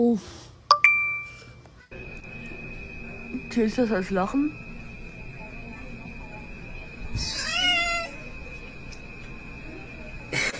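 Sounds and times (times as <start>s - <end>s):
speech: 0.0s - 0.4s, 3.6s - 4.6s
steady high tone: 0.7s - 10.5s
cat meowing: 7.2s - 8.2s.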